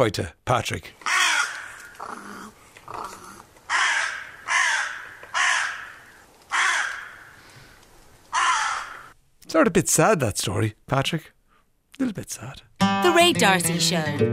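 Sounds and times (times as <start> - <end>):
speech: 0.0 - 1.1, 9.5 - 11.4, 12.0 - 14.3
crows cawing: 1.0 - 9.2.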